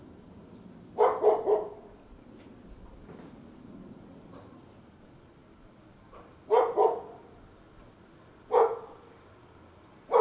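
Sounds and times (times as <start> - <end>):
dog barking sharply at Tai O: 1.0 - 1.9, 6.5 - 7.3, 8.5 - 9.0.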